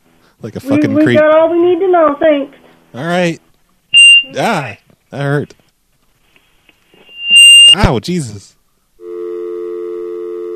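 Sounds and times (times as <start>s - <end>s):
speech: 0.4s - 3.4s, 4.2s - 5.6s, 7.7s - 8.6s
telephone dial tone: 9.0s - 10.5s.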